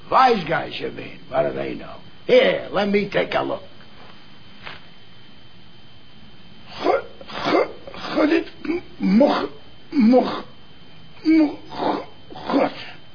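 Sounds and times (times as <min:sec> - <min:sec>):
speech: 0:00.1 - 0:03.7, 0:08.2 - 0:10.5, 0:11.2 - 0:11.8
man clearing his throat: 0:06.8 - 0:10.5, 0:11.3 - 0:13.0.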